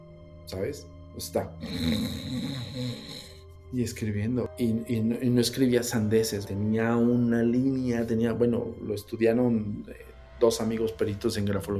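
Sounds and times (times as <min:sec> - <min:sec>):
speech: 0:00.5 - 0:11.7
person imitating snoring with their voice: 0:01.6 - 0:03.4.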